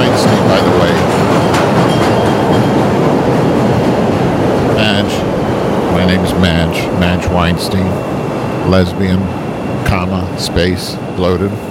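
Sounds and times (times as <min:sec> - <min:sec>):
train passing overhead on rails: 0:00.0 - 0:11.6
speech: 0:06.3 - 0:08.1, 0:08.7 - 0:11.6.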